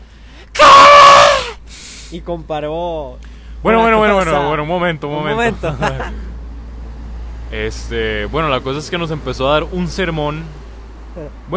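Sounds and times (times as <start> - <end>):
voice imitating a woman's scream: 0.6 - 1.6
speech: 2.1 - 6.2, 7.5 - 10.6, 11.2 - 11.5
laughter: 5.4 - 6.3.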